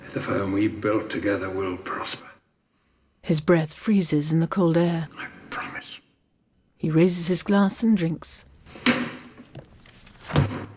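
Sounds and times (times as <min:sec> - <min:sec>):
steady low noise: 0:00.0 - 0:10.7
speech: 0:00.2 - 0:02.3, 0:03.2 - 0:06.0, 0:06.8 - 0:09.1
book slammed shut: 0:08.8 - 0:09.4, 0:10.1 - 0:10.7.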